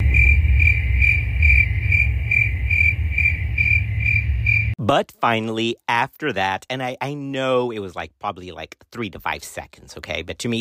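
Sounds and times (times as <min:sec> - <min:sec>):
crickets chirping: 0:00.0 - 0:04.8
speech: 0:04.9 - 0:10.5.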